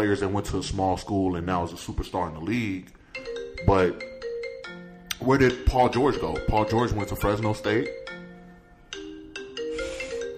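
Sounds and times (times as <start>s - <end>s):
speech: 0.0s - 4.1s, 5.2s - 8.0s
phone ringtone with a bright electronic melody: 3.1s - 10.3s.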